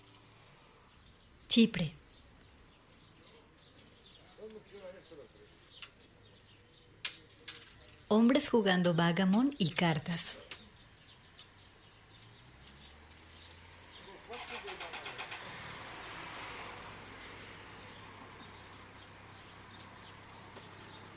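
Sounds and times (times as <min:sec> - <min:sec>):
birds chirping: 0:00.9 - 0:16.3, 0:17.2 - 0:21.1
speech: 0:01.5 - 0:02.0, 0:08.1 - 0:10.4
vehicle rumbling past on a street: 0:10.7 - 0:21.1.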